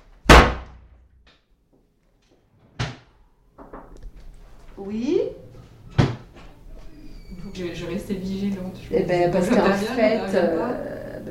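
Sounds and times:
speech: 4.8 - 5.4, 7.6 - 10.9
door slamming shut with a heavy bang: 5.9 - 6.5.

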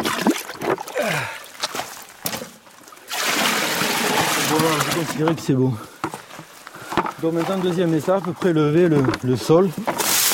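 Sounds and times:
river water pouring into a large container: 0.0 - 1.0, 3.0 - 5.2
river water splashing and gurgling: 0.0 - 5.3
speech: 5.0 - 5.9, 7.2 - 9.9.

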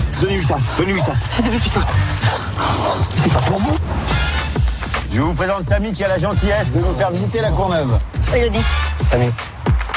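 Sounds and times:
speech: 0.2 - 4.3, 5.1 - 9.5
dog barking and yipping: 0.4 - 3.4.

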